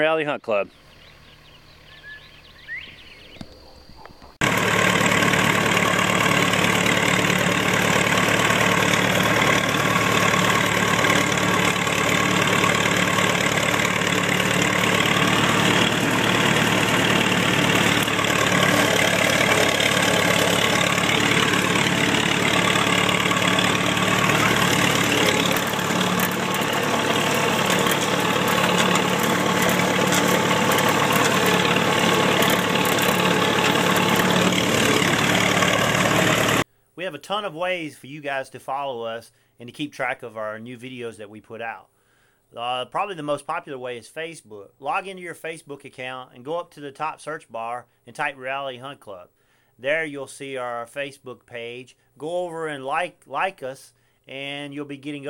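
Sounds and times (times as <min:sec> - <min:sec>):
speech: 0:00.0 - 0:00.9, 0:37.3 - 0:41.9, 0:42.5 - 0:55.2
tractor engine starting up and idling: 0:04.3 - 0:36.6.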